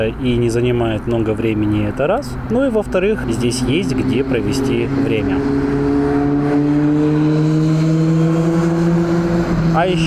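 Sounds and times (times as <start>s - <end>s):
speech: 0.0s - 5.9s, 9.8s - 10.0s
motorcycle passing at high speed: 3.1s - 10.0s.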